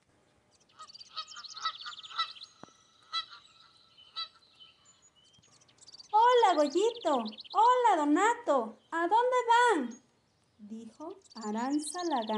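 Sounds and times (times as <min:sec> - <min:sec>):
duck quacking: 0:00.8 - 0:02.4, 0:03.0 - 0:04.4
speech: 0:06.6 - 0:10.0, 0:10.6 - 0:12.3.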